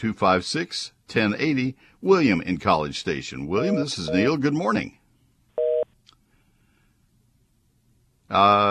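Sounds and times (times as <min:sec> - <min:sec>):
speech: 0:00.0 - 0:05.0, 0:08.3 - 0:08.6
phone line disconnect beep: 0:03.6 - 0:04.4.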